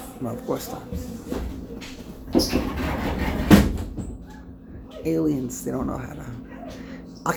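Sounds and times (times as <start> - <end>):
speech: 0.2 - 3.3, 5.0 - 6.4
automatic sliding door closing: 1.0 - 6.4.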